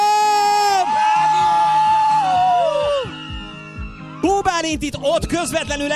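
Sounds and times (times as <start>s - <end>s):
festival audience screaming together on a countdown: 0.0s - 4.6s
speech: 4.7s - 5.9s.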